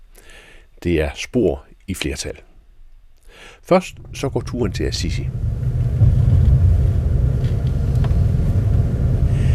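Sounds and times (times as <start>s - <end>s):
speech: 0.8s - 2.5s, 3.4s - 5.6s
brief high hiss: 3.4s - 9.5s
faint rattles: 3.8s - 9.5s
heavy low rumble of a sleeper train carriage in motion: 3.9s - 9.5s.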